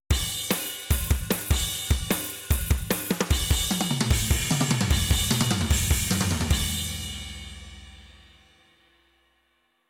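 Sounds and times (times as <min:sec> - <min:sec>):
drums with heavy brick-wall compression: 0:00.1 - 0:07.1.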